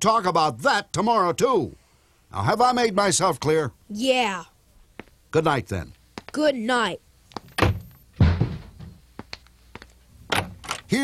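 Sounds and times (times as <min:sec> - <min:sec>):
speech: 0:00.0 - 0:04.5, 0:05.3 - 0:07.0
shoe thrown against a door thudding: 0:07.5 - 0:09.0.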